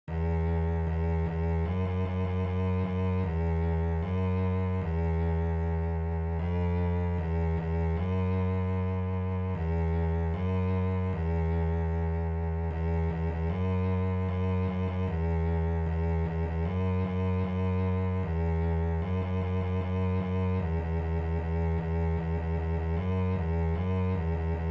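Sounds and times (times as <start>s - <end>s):
bass E string notes: 0.0s - 24.6s.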